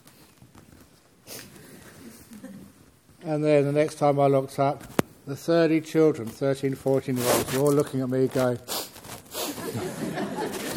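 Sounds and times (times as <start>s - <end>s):
person imitating hay fever sniffing: 1.2s - 2.4s, 8.6s - 9.7s
speech: 3.2s - 8.8s
laughter: 9.4s - 10.7s.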